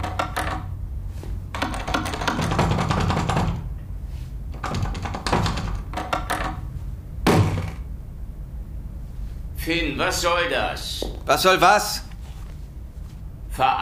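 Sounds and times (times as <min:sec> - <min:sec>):
apartment front door handle pressed down and rattled against the locked door: 0:00.0 - 0:00.7, 0:01.5 - 0:03.8, 0:04.5 - 0:06.7
louder thud: 0:07.2 - 0:07.9
speech: 0:09.7 - 0:12.1, 0:13.6 - 0:13.8.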